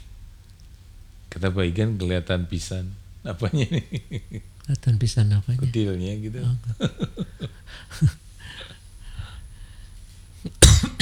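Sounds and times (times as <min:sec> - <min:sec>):
speech: 0:01.4 - 0:08.2
laughter: 0:03.3 - 0:08.8
person coughing from a pungent perfume: 0:10.5 - 0:11.0.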